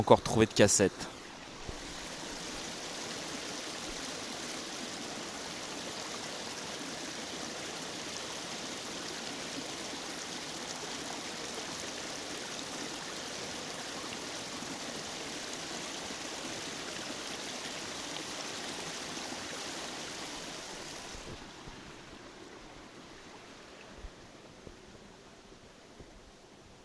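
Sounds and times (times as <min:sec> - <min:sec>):
speech: 0:00.0 - 0:01.2
mountain river water rushing: 0:00.2 - 0:26.6.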